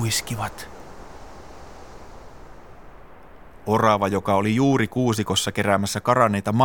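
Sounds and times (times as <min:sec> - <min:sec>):
howling wind: 0:00.0 - 0:06.6
speech: 0:00.1 - 0:00.8, 0:03.7 - 0:06.6.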